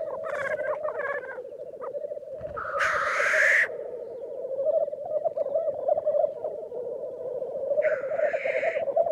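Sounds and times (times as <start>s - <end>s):
black grouse bubbling cooing: 0.0s - 9.1s.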